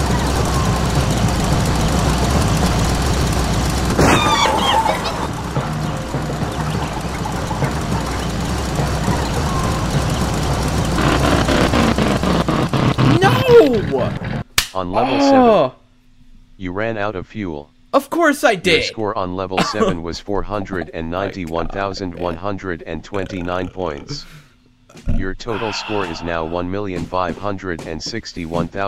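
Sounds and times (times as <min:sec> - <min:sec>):
car engine idling: 0:00.0 - 0:14.4
laughter: 0:04.1 - 0:09.4, 0:19.5 - 0:27.4
speech: 0:14.8 - 0:15.8, 0:16.6 - 0:24.4, 0:25.0 - 0:28.8
brief higher-pitched sounds: 0:25.5 - 0:26.7.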